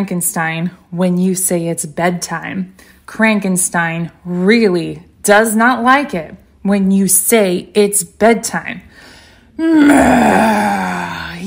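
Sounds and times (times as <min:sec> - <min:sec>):
speech: 0:00.0 - 0:11.4
voice imitating a long loud groaning yawn: 0:09.6 - 0:11.4.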